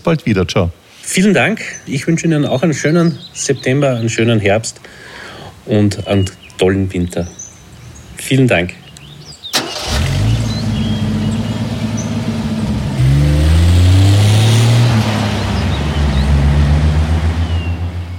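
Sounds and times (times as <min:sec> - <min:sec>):
speech: 0:00.0 - 0:07.4, 0:08.2 - 0:08.8
car engine starting and revving while driving off: 0:09.6 - 0:18.1.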